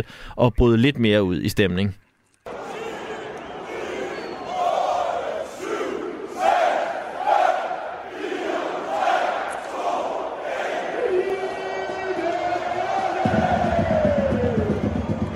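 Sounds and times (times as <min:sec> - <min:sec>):
speech: 0:00.0 - 0:02.0
large football crowd chanting a countdown: 0:02.5 - 0:15.2
drumming: 0:12.1 - 0:15.3.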